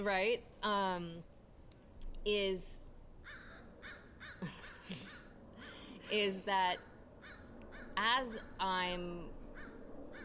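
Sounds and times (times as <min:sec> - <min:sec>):
speech: 0:00.0 - 0:01.3, 0:02.2 - 0:03.4, 0:06.1 - 0:06.9, 0:08.0 - 0:09.4
faint noise: 0:00.0 - 0:10.2
crow cawing: 0:03.2 - 0:05.9, 0:07.2 - 0:08.0, 0:09.5 - 0:10.2.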